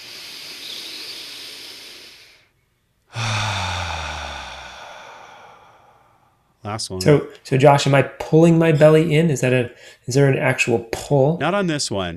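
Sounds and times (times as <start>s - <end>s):
deep breathing in through nose, out through mouth during a guided breathing exercise: 0.0s - 6.6s
speech: 6.6s - 12.1s.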